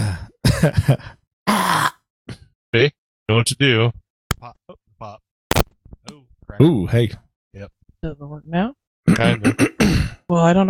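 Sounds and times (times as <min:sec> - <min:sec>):
speech: 0:00.6 - 0:01.9, 0:02.7 - 0:05.2, 0:06.1 - 0:10.6
throat clearing into a microphone: 0:09.1 - 0:10.2.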